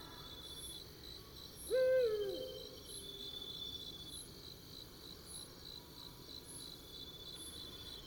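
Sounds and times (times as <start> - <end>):
Eurasian eagle-owl hooting: 1.7 - 2.7.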